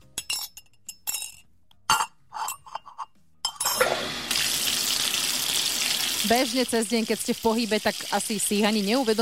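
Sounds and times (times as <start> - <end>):
dishes clinking and clattering in a sink: 0.1 - 4.0
tap water running and splashing into the basin: 3.8 - 9.2
speech: 6.2 - 9.2.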